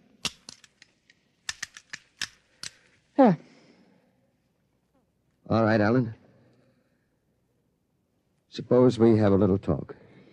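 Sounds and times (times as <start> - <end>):
metallic clicks and snaps of a firing pin being put back into a pistol: 0.2 - 3.0
speech: 3.2 - 3.5, 5.5 - 6.2, 8.6 - 10.0.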